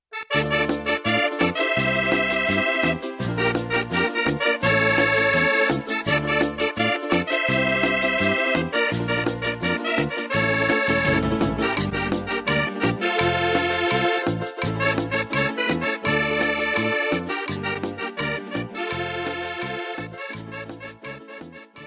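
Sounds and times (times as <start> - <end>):
Andean cumbia rhythm: 0.2 - 21.8.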